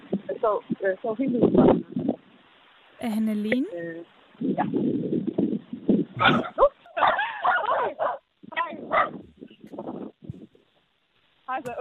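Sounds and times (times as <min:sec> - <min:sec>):
speech: 0:00.4 - 0:02.2, 0:03.0 - 0:05.3, 0:06.2 - 0:06.7
dog barking and yipping: 0:06.2 - 0:09.2.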